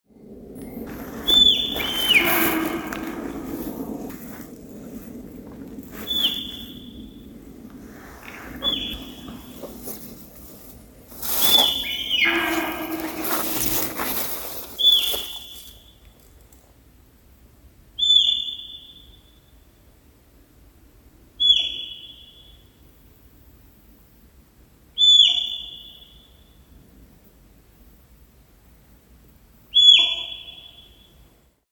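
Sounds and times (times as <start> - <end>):
bird: 0.8 - 4.4, 5.8 - 10.6, 11.2 - 16.0, 18.0 - 19.3, 21.4 - 22.6, 25.0 - 26.5, 29.8 - 31.2.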